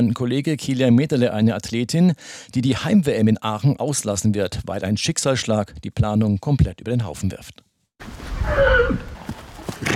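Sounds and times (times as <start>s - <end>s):
speech: 0.0s - 9.1s
foal neighing in a paddock: 8.4s - 9.2s, 9.8s - 9.9s.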